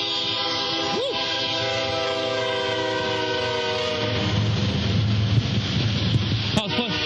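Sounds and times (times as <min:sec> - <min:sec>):
train horn blaring in a long steady chord: 0:00.0 - 0:05.0, 0:06.6 - 0:07.0
rail cars rolling past: 0:00.0 - 0:07.0.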